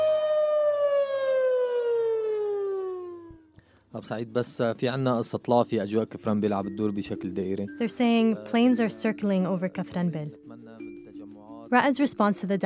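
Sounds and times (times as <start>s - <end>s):
air raid siren wailing as a wartime radio alert: 0.0s - 3.5s
speech: 3.9s - 10.8s, 11.7s - 12.6s.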